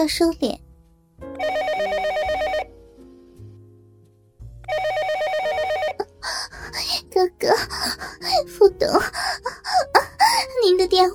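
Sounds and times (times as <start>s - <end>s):
speech: 0.0s - 0.6s, 7.4s - 9.6s, 10.6s - 11.1s
desk telephone ringing with trilling electronic bell: 1.3s - 2.8s, 4.7s - 6.1s.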